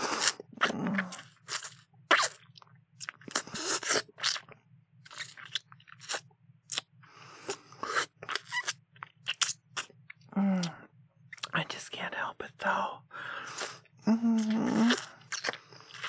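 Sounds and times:
mouth sucking and slurping: 0.0 - 2.4, 3.0 - 4.4, 7.4 - 9.9, 13.4 - 16.0
faint steady low hum: 0.2 - 16.0.

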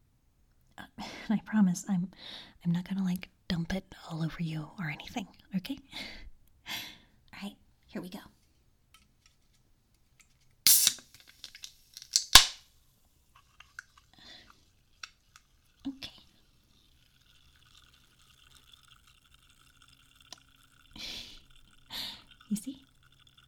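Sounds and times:
speech: 1.3 - 8.4
brief rustling burst: 8.4 - 15.8
can being cracked open: 9.0 - 12.7, 13.3 - 23.4
faint scattered fizzing crackles: 10.6 - 23.4.

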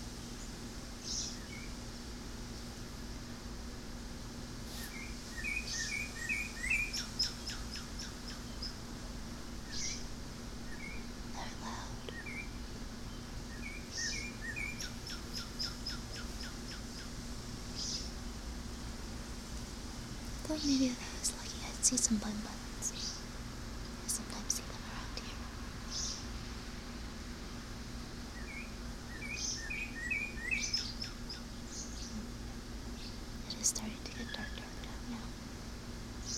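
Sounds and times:
steady low hum: 0.0 - 36.3
birds chirping outdoors at dusk: 4.8 - 8.8, 9.6 - 18.1, 20.5 - 23.3, 25.9 - 26.3, 28.3 - 35.3
speech: 20.6 - 21.1, 21.9 - 23.0.

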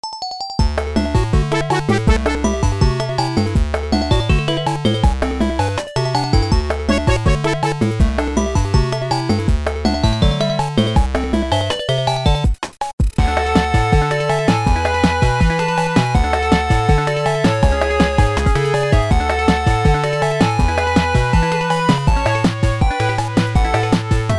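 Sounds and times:
Sega Genesis video game music remix: 0.0 - 24.3.

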